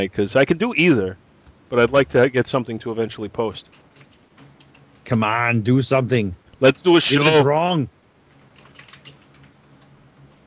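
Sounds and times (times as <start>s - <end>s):
speech: 0.0s - 3.8s, 5.0s - 8.0s
low hum: 0.0s - 10.4s
typing on a computer keyboard: 3.7s - 5.0s, 8.3s - 10.4s.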